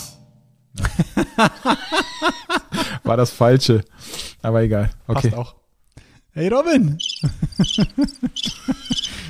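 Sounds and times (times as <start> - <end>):
laughter: 0.8 - 3.2, 7.2 - 9.2
speech: 1.2 - 5.6, 6.3 - 9.1
cricket chirping: 7.0 - 9.2.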